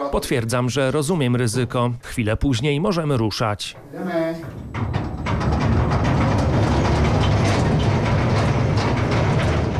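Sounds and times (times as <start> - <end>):
speech: 0.1 - 5.0
underground mine train wagons rattling along rails: 0.6 - 9.7.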